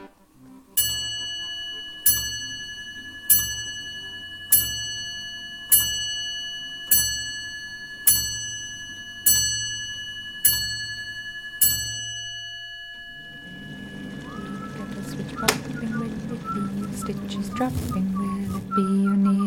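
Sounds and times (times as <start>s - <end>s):
handmade clock chiming: 0.6s - 18.8s
faint voices in a noisy jumble: 14.1s - 18.9s.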